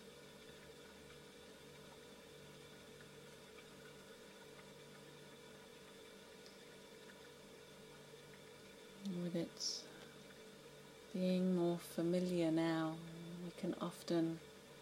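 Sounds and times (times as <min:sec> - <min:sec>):
faint mechanical buzz: 0:00.0 - 0:14.7
steady low refrigerator hum: 0:00.0 - 0:14.7
speech: 0:09.2 - 0:09.9, 0:11.2 - 0:14.5.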